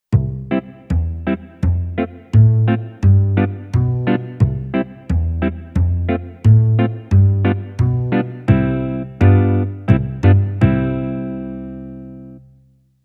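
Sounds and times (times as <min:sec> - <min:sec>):
acoustic bass jazz guitar chords: 0:00.1 - 0:12.5.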